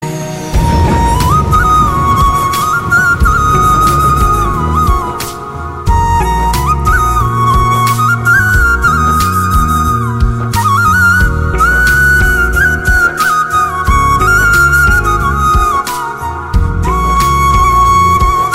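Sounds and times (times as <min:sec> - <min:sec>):
flute ringtone: 0:00.5 - 0:18.5.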